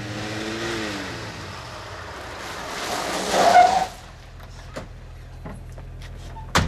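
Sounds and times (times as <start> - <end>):
car braking hard to a stop with a screech: 0.0 - 4.9
car engine droning and surging: 0.0 - 6.4.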